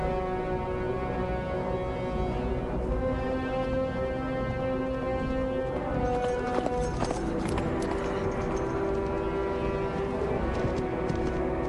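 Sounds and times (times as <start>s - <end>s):
sustained low musical tones in a film scene: 0.0s - 11.6s
white horse galloping across scrub-covered plains: 5.1s - 11.6s.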